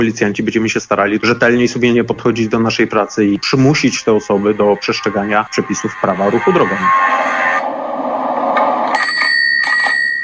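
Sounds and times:
speech: 0:00.0 - 0:07.4
steady broadband noise: 0:00.0 - 0:09.2
bicycle bell ringing: 0:08.9 - 0:10.2.

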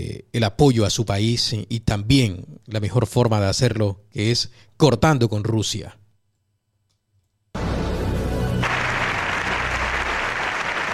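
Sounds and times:
speech: 0:00.0 - 0:06.0
audience ovation for a president in the Congress of Deputies: 0:08.6 - 0:10.9.

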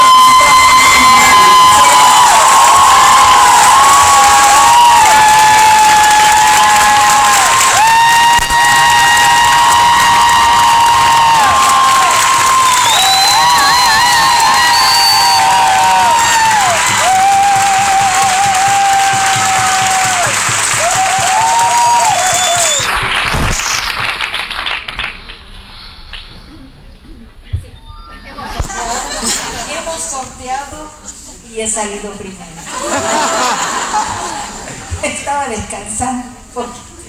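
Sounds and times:
large audience cheering with whoops and shouts: 0:00.0 - 0:23.7, 0:32.7 - 0:34.6
large audience applauding at an event: 0:00.0 - 0:25.5, 0:32.7 - 0:34.8
laughter: 0:28.3 - 0:30.0, 0:32.6 - 0:35.0.

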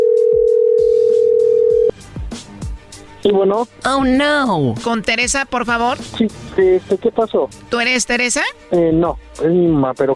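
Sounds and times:
telephone dial tone: 0:00.0 - 0:01.9
speech: 0:03.2 - 0:10.1.

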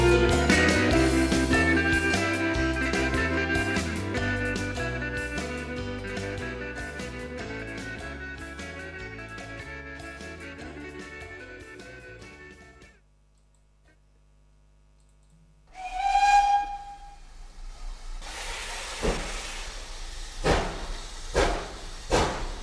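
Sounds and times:
music: 0:00.0 - 0:13.0
train whistle sounding for departure: 0:01.0 - 0:07.0, 0:15.7 - 0:19.7
rush of hissing after train whistle: 0:17.2 - 0:22.6.

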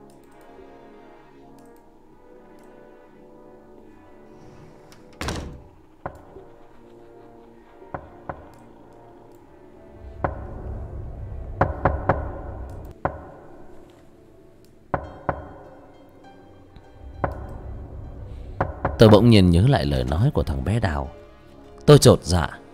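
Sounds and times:
knocking on a door at night: 0:08.0 - 0:08.5, 0:10.1 - 0:13.4, 0:15.0 - 0:15.6, 0:18.6 - 0:19.2
speech: 0:19.0 - 0:21.2, 0:21.9 - 0:22.6.

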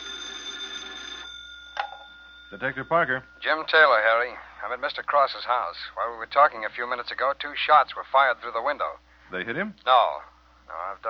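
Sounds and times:
telephone bell ringing on a detective's desk at police headquarters: 0:00.0 - 0:04.2
faint hum: 0:00.0 - 0:11.0
speech: 0:02.5 - 0:11.0.

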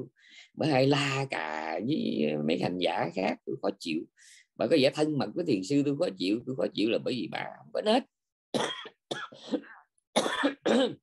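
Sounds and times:
speech: 0:00.0 - 0:11.0
person giving a Buddhist teaching coughing: 0:08.6 - 0:11.0.

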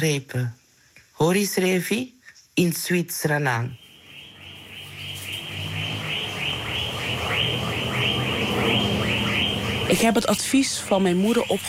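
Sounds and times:
speech: 0:00.0 - 0:00.6, 0:01.2 - 0:03.8, 0:09.9 - 0:11.6
birds calling outdoors among palm trees: 0:02.2 - 0:11.6
frogs calling outdoors among palm trees: 0:03.5 - 0:11.6.

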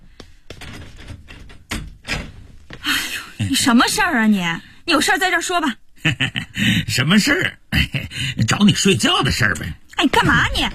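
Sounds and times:
door being rammed and kicked open: 0:00.5 - 0:02.8
speech: 0:03.4 - 0:10.7.

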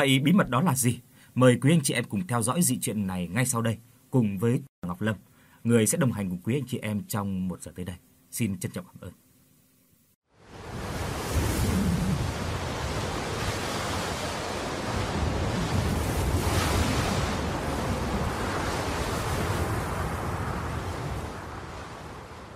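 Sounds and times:
speech: 0:00.0 - 0:09.2
cold wind rustling clumps of bamboo at the edge of a village: 0:10.3 - 0:22.5.

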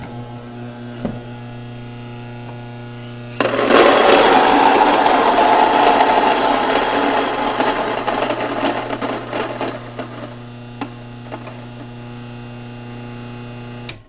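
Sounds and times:
steady electrical hum: 0:00.0 - 0:13.9
electric grain mill grinding grain: 0:03.2 - 0:14.0.

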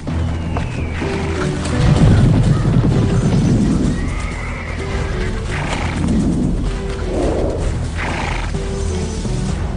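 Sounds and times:
hooves clip-clopping: 0:00.0 - 0:09.3
white horse neighing and whinnying: 0:04.0 - 0:06.1, 0:08.0 - 0:08.6.

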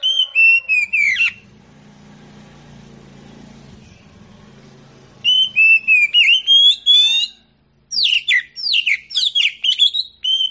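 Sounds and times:
Oriental magpie-robin whistled song: 0:00.0 - 0:01.4, 0:05.2 - 0:10.4.

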